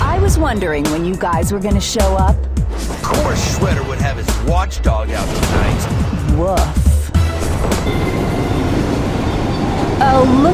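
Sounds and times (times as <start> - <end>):
speech: 0.4 - 6.9, 7.8 - 8.4, 10.0 - 10.5
employee train running along the rails: 3.0 - 10.5.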